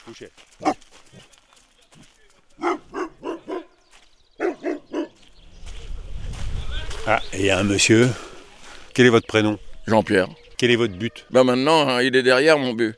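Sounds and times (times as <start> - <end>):
speech: 0.0 - 1.3, 7.1 - 8.3, 9.0 - 12.9
dog barking: 0.6 - 1.2, 2.6 - 3.7, 4.4 - 5.2.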